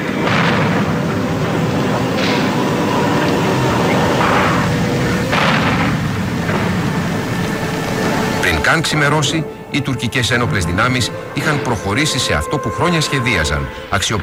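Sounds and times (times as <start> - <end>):
heavy rumbling bomb blasts: 0.0 - 14.0
constant low roar: 0.0 - 14.2
speech: 8.7 - 14.2.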